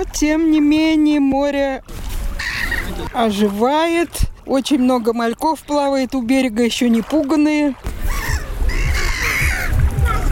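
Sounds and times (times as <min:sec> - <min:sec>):
speech: 0:00.0 - 0:02.0, 0:02.9 - 0:07.9
seagulls calling on a sea shore: 0:02.4 - 0:03.1, 0:07.9 - 0:10.3.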